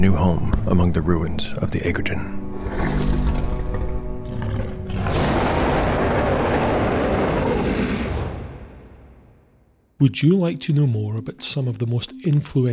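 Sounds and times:
speech: 0.0s - 3.0s, 10.0s - 12.7s
huge female creature roaring triumphantly on a mountain top: 2.6s - 8.2s.

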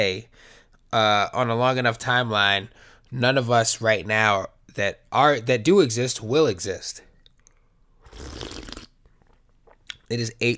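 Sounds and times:
speech: 0.0s - 7.1s, 10.1s - 10.5s
slurping sip of hot black coffee: 8.0s - 9.8s.

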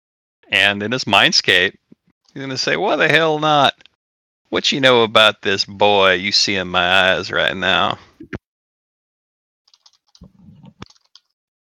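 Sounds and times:
speech: 0.5s - 3.9s, 4.5s - 8.4s
fast keyboard typing: 9.7s - 11.4s.

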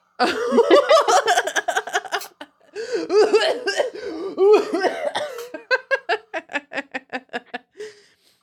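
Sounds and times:
laughter: 0.2s - 3.7s, 4.4s - 7.7s
harsh hacking coughing after smoking: 3.1s - 5.7s.

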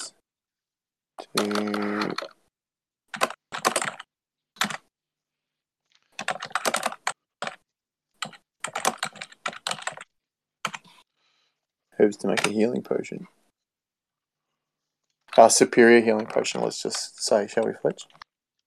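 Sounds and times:
speech: 1.2s - 2.0s, 12.1s - 13.4s, 15.4s - 18.2s
typing on a computer keyboard: 1.2s - 2.4s, 3.1s - 4.9s, 6.2s - 7.6s, 8.2s - 11.0s, 12.2s - 12.7s, 16.1s - 16.6s.

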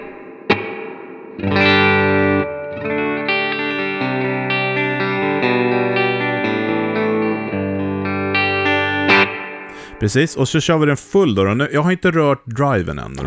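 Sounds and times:
sustained electric guitar chords through a spring reverb: 0.0s - 9.8s
speech: 1.4s - 1.8s, 10.0s - 13.2s.

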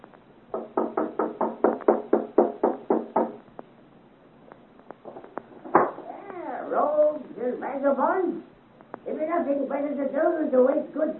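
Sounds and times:
loud hollow knocking on a house door: 0.5s - 3.4s
speech: 7.7s - 8.5s, 9.3s - 11.1s.

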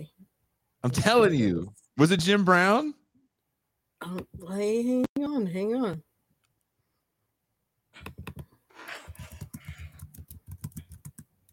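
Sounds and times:
speech: 0.8s - 3.0s, 4.0s - 6.1s
fingers typing on a computer keyboard: 8.0s - 8.5s, 9.1s - 11.5s.

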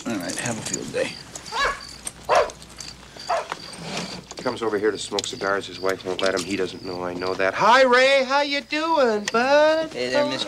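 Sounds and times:
speech: 0.2s - 1.6s, 4.4s - 10.4s
dog barking: 1.5s - 2.6s, 3.3s - 3.5s.

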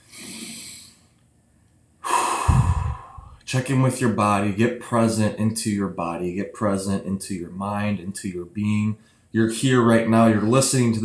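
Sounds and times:
deep breath during a guided body check-in: 0.0s - 1.0s, 2.0s - 3.4s
speech: 3.5s - 11.0s.

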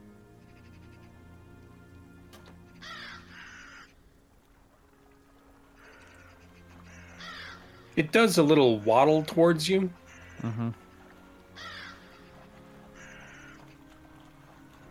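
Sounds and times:
raven cawing: 2.8s - 4.0s, 5.8s - 7.9s, 10.0s - 10.4s, 11.6s - 12.2s, 13.0s - 13.7s
speech: 8.0s - 10.8s.

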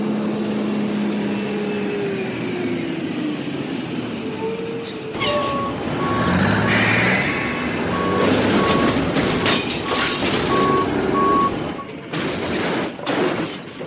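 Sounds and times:
heavy truck engine rumbling: 0.0s - 13.8s
truck warning beep: 5.2s - 9.0s, 10.5s - 11.9s
truck crashing and clattering impacts: 7.7s - 13.8s.

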